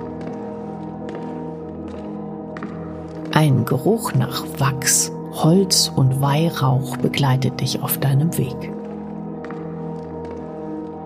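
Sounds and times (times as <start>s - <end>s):
slow footsteps echoing through stone corridors: 0.0s - 4.4s, 8.6s - 11.0s
speech: 3.4s - 8.8s.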